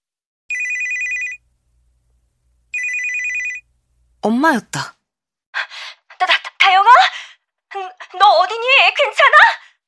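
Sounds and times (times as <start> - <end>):
mobile phone ringing: 0.5 - 1.4, 2.7 - 3.7
speech: 4.2 - 5.0, 8.1 - 9.6.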